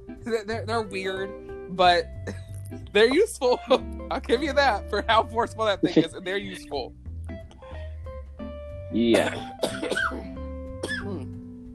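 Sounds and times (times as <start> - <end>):
speech: 0.2 - 7.0, 8.9 - 10.3
person coughing: 9.2 - 10.2.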